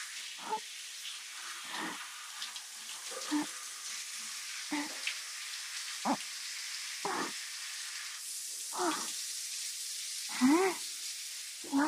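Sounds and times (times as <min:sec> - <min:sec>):
water splashing as it rinses soap off an arm: 0:00.0 - 0:09.2, 0:10.3 - 0:10.9, 0:11.6 - 0:11.8
shower spray hissing: 0:00.0 - 0:11.8
speech: 0:00.4 - 0:00.8, 0:03.3 - 0:03.6.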